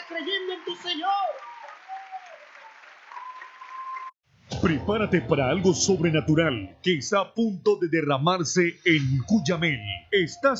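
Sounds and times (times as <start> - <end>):
congregation applauding at a church revival service: 0.0 - 4.2
speech: 0.1 - 1.4, 4.6 - 10.5.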